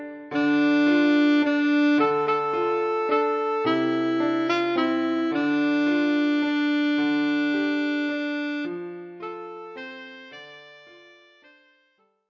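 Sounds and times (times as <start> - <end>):
alto saxophone playing a folk song: 0.3 - 12.0.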